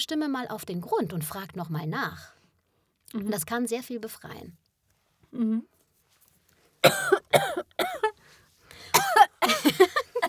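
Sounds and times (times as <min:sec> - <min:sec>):
speech: 0:00.0 - 0:02.4, 0:03.1 - 0:04.6, 0:05.3 - 0:05.7, 0:06.8 - 0:08.1
person coughing: 0:06.8 - 0:08.1, 0:08.9 - 0:10.0.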